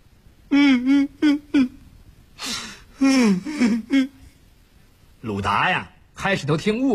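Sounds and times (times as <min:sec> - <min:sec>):
man's voice imitating someone crying with sobs: 0:00.5 - 0:01.8, 0:03.0 - 0:04.3
speech: 0:05.5 - 0:06.9.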